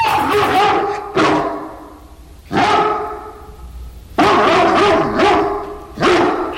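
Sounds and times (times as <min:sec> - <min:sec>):
dog barking: 0:00.2 - 0:01.9, 0:02.5 - 0:03.4, 0:04.2 - 0:06.5.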